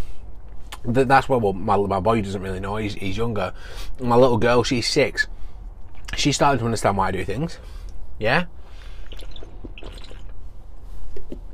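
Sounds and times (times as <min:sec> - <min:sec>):
speech: 0:00.8 - 0:05.4, 0:06.2 - 0:08.6
person sipping water with slurps and swallowing: 0:05.6 - 0:06.2, 0:08.8 - 0:10.8
water drips: 0:09.0 - 0:10.4.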